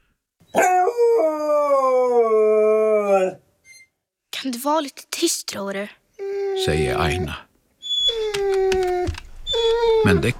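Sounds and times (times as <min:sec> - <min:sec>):
dog howling with a short yelp: 0:00.5 - 0:03.4, 0:07.9 - 0:10.2
speech: 0:04.5 - 0:06.0, 0:06.6 - 0:07.5, 0:10.0 - 0:10.3.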